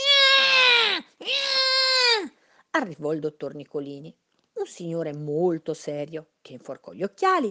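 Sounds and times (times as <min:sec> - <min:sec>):
newborn baby crying loudly: 0:00.0 - 0:02.3
speech: 0:02.8 - 0:07.4.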